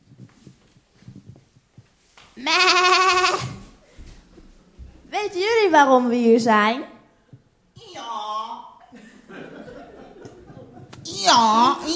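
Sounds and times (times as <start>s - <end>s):
speech: 2.4s - 3.5s, 5.2s - 6.9s, 11.2s - 11.9s
sheep bleating: 2.4s - 3.6s
laughter: 8.8s - 11.1s.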